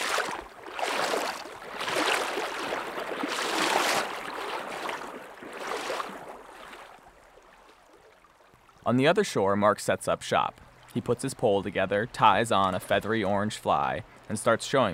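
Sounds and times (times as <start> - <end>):
legs sloshing through a rushing river while wading: 0.0 - 8.8
rushing river water: 0.0 - 14.9
speech: 8.9 - 14.9.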